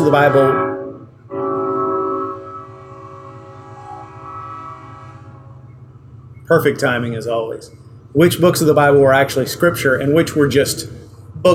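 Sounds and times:
speech: 0.0 - 0.6, 6.5 - 11.5
passing train horn blasting: 0.0 - 8.0
low rumble of passing train: 0.0 - 11.5.

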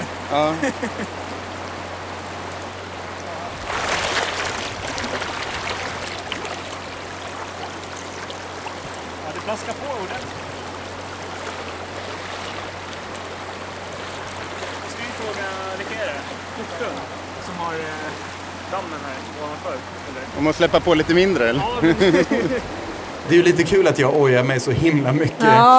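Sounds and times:
laughter: 0.0 - 1.2, 16.5 - 17.1, 21.5 - 22.8
person wading on foot through river rapids: 0.0 - 20.4
rushing river rapids: 0.0 - 25.7
speech: 0.3 - 1.3, 9.5 - 10.4, 15.2 - 25.7
voice sounds: 25.2 - 25.7.

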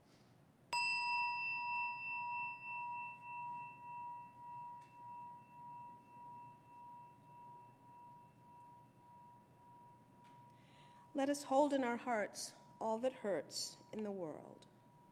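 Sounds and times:
meditation chime ringing: 0.8 - 11.1
speech: 11.2 - 14.7.

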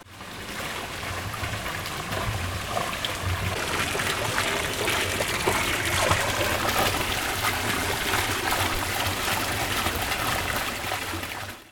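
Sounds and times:
outdoor fountain water trickling and splashing: 0.0 - 11.6.

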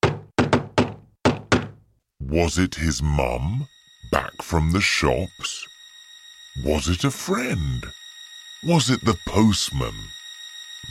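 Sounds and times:
loud knocks on a wooden door: 0.0 - 1.8
speech: 2.3 - 5.7, 6.6 - 8.0, 8.6 - 10.2.

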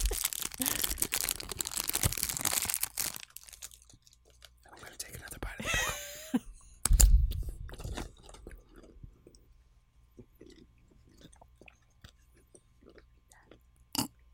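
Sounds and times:
crunchy chewing: 0.0 - 4.6, 7.4 - 14.2
candy wrapper crinkling while being unwrapped: 0.0 - 5.6.

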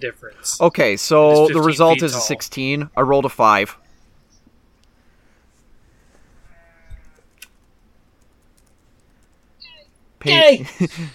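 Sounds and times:
speech: 0.0 - 3.8, 10.2 - 11.1
faint clicks and soft noises: 4.3 - 5.0, 6.8 - 10.0
sheep bleating: 6.5 - 7.3.

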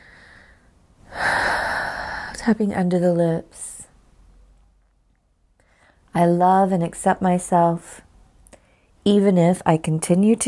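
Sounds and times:
big deep breath drawn in: 0.0 - 2.5
speech: 2.4 - 3.8, 6.2 - 8.0, 9.0 - 10.4.

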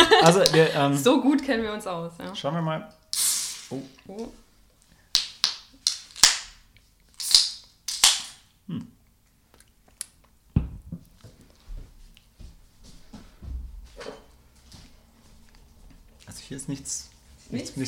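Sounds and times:
laughter: 0.0 - 0.8
speech: 0.2 - 3.0, 3.7 - 4.4, 8.7 - 8.9, 16.5 - 17.8
beer bottles opening with caps snapping off and fizz: 3.1 - 3.8.

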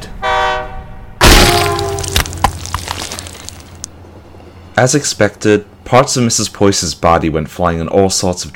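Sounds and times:
train horn blaring: 0.0 - 2.2
train rushing by on tracks with rattling clanking metal: 3.9 - 6.5
speech: 4.8 - 8.5.

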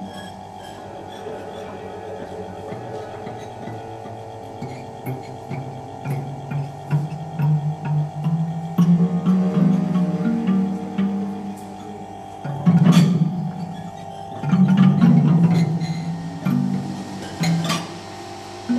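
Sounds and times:
low droning wavering tones of sound sculptures: 0.0 - 18.7
steady mid-pitched hum of sound sculptures: 0.0 - 18.7.

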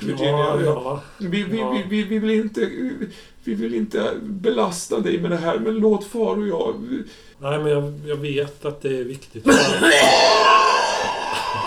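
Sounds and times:
speech: 0.0 - 11.2
harsh rasping throaty cough: 9.5 - 11.6.

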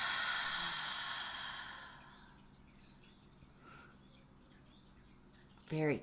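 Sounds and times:
long breathy exhale after a deep breath: 0.0 - 2.3.

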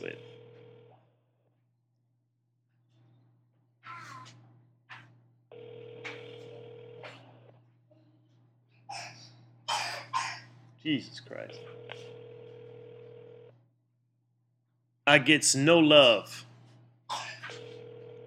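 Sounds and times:
ringback tone of an unanswered outgoing phone call: 5.6 - 7.0, 11.6 - 13.5, 17.5 - 18.2
person coughing: 7.0 - 7.3, 8.9 - 10.5, 17.1 - 17.6
speech: 10.8 - 12.2, 15.1 - 16.5.

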